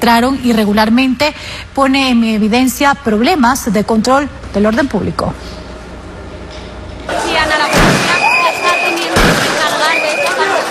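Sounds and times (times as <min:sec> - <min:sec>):
speech: 0:00.0 - 0:05.6
loud agitated crowd during a stampede of migrants in Ceuta: 0:07.1 - 0:10.6
gunshots fired into the air: 0:07.7 - 0:08.4, 0:09.0 - 0:09.9.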